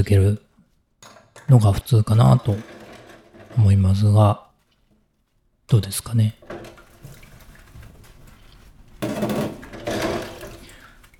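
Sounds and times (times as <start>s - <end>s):
speech: 0.0s - 0.4s, 1.5s - 2.8s, 3.6s - 4.4s, 5.7s - 6.5s
running water splashing in a sink: 6.4s - 11.1s.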